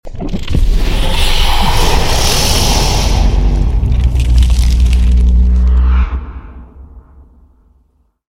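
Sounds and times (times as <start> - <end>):
devourer spawn: 0.0 - 5.7.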